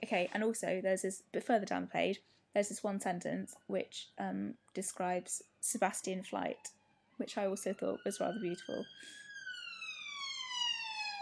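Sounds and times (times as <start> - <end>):
speech: 0.1 - 9.2
emergency vehicle siren near a police station and hospital: 6.1 - 11.2.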